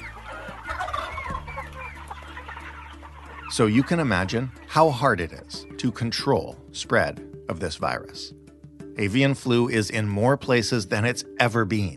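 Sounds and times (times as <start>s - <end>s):
many chickens clucking and squawking on a commercial chicken farm: 0.0s - 5.1s
speech: 3.5s - 8.4s, 9.0s - 11.9s.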